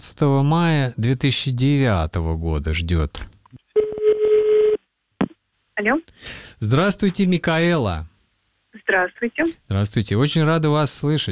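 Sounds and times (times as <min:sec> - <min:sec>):
speech: 0:00.0 - 0:03.4, 0:05.8 - 0:08.1, 0:08.7 - 0:11.3
steady low telephone dial tone: 0:03.8 - 0:04.8.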